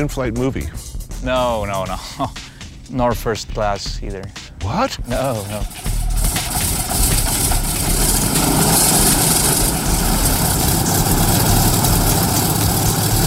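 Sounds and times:
speech: 0:00.0 - 0:05.9
old propeller plane engine idling on the ground: 0:05.0 - 0:13.2.

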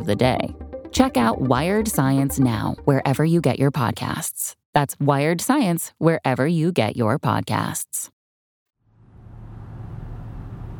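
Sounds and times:
speech: 0:00.0 - 0:08.1
car driving along a road: 0:08.9 - 0:10.7.

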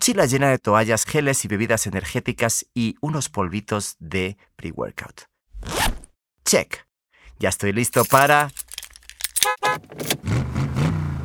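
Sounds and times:
speech: 0:00.0 - 0:05.8, 0:06.4 - 0:08.6
keys jingling: 0:07.8 - 0:10.2.

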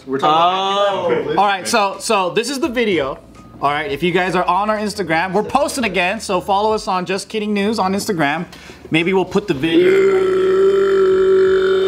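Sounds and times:
speech: 0:00.0 - 0:10.5
long loud sustained burp: 0:09.7 - 0:11.8.

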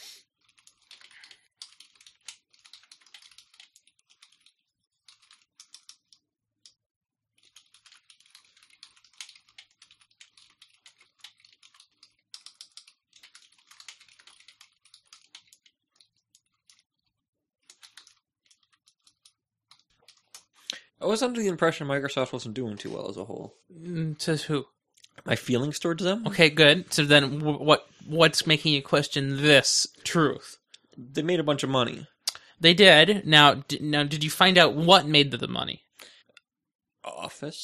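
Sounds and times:
rapid keystrokes on a computer keyboard: 0:00.4 - 0:06.2, 0:07.4 - 0:16.8, 0:17.6 - 0:20.5
speech: 0:21.0 - 0:35.8, 0:37.4 - 0:37.6.

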